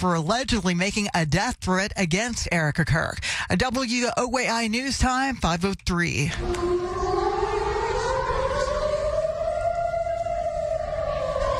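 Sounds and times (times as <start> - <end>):
speech: 0.0 - 7.0
air raid sirens wailing in Israel during a missile attack: 6.3 - 11.5.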